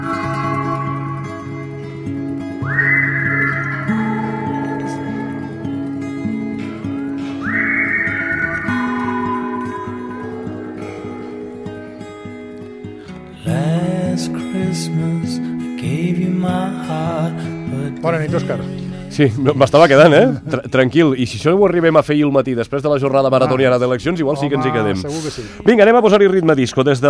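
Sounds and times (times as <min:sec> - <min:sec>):
bright whistled melody with sliding notes: 0:00.0 - 0:13.2
full instrumental Christmas song: 0:00.0 - 0:21.4
speech: 0:18.0 - 0:27.0.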